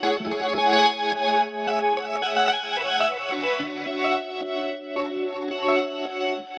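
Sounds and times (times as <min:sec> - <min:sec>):
wet guitar: 0:00.0 - 0:06.5.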